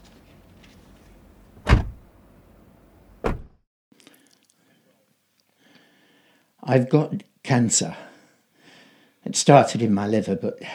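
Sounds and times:
car doors thudding shut: 1.6s - 2.1s, 3.2s - 3.6s
speech: 6.7s - 8.1s, 9.3s - 10.7s.

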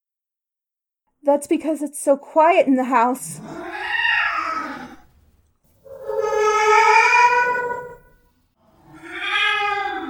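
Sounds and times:
speech: 1.3s - 3.9s
cat meowing in a quiet house: 3.4s - 5.0s, 5.8s - 8.2s, 8.9s - 10.0s.

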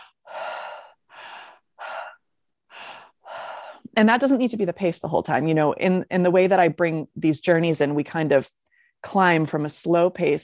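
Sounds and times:
person circular breathing through an open mouth with a relaxed jaw and throat: 0.0s - 3.9s
speech: 4.0s - 10.4s.

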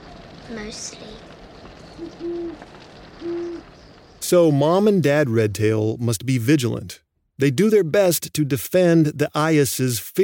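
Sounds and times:
speech: 0.5s - 1.4s, 2.0s - 10.2s
great horned owl hooting: 2.0s - 2.6s, 3.2s - 3.8s.

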